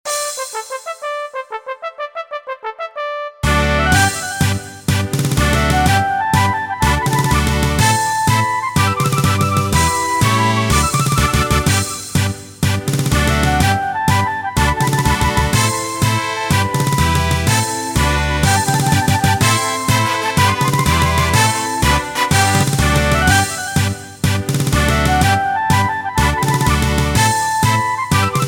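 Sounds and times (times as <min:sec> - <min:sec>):
instrumental fanfare backing track: 0:00.0 - 0:28.4.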